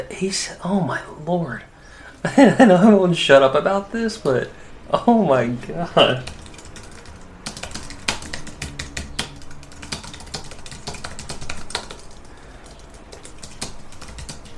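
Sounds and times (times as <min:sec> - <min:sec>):
speech: 0:00.0 - 0:06.4
typing on a computer keyboard: 0:06.0 - 0:14.5.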